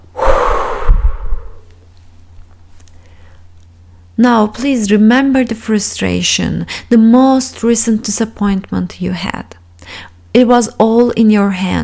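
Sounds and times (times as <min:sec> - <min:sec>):
long forceful exhale during a guided countdown exercise: 0:00.0 - 0:01.7
soft low rumbles: 0:00.0 - 0:01.9
speech: 0:04.2 - 0:11.8.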